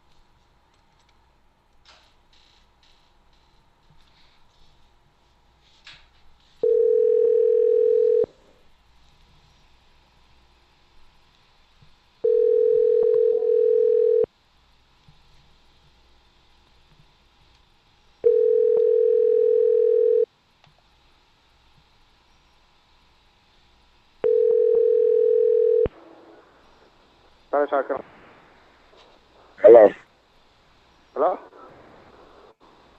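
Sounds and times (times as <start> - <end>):
telephone ringback tone after dialing a number: 6.6 - 8.3, 12.2 - 14.3, 18.2 - 20.3, 24.2 - 25.9
speech: 27.6 - 28.2.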